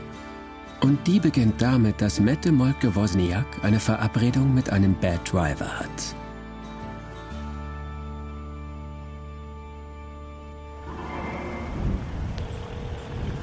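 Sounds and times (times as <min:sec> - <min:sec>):
speech: 0:00.8 - 0:06.2
boat engine droning in a harbour: 0:10.8 - 0:13.4
wind noise: 0:10.8 - 0:13.4.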